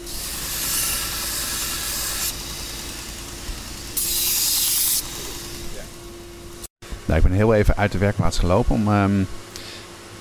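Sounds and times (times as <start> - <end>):
knife blade grinding against a bench grinder wheel to sharpen it: 0.0 - 6.0
running bench grinder humming: 0.0 - 6.7
speech: 7.1 - 9.4.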